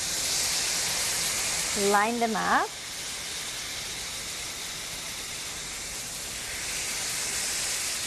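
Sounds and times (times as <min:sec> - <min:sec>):
food sizzling in a frying pan: 0:00.0 - 0:08.0
speech: 0:01.8 - 0:02.8.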